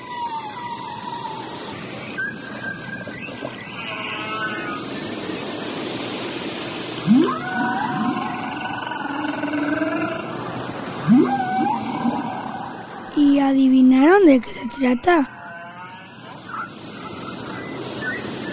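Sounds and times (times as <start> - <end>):
whale calls underwater off the coast of Uruguay: 0.0 - 5.1, 7.0 - 13.1, 14.5 - 16.7
speech: 13.6 - 15.3.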